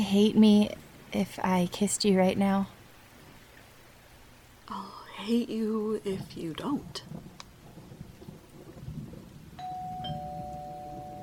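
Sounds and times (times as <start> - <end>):
speech: 0.0 - 2.8, 4.7 - 7.3
doorbell chiming two bright tones: 9.6 - 11.2.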